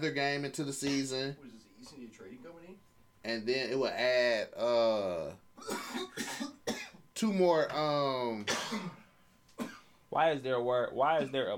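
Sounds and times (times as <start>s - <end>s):
speech: 0.0s - 6.4s, 7.2s - 9.0s, 10.1s - 11.5s
person coughing: 5.6s - 7.0s, 8.4s - 9.9s.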